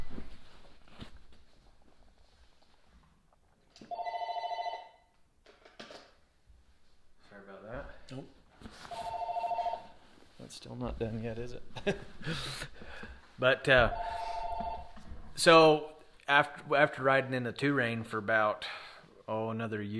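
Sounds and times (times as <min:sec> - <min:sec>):
telephone ringing in sharp electronic bursts: 0:03.9 - 0:05.1, 0:08.9 - 0:10.0, 0:13.9 - 0:15.0
speech: 0:10.6 - 0:14.3, 0:15.4 - 0:19.9.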